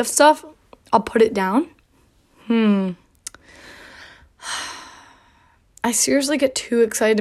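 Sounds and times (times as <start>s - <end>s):
speech: 0.0s - 1.8s, 2.5s - 3.0s, 5.8s - 7.2s
heavy breathing, winded and out of breath: 3.4s - 5.7s.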